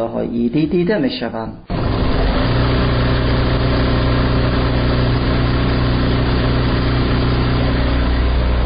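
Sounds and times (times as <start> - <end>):
speech: 0.0 - 1.9
embroidery machine motor humming: 1.7 - 8.6.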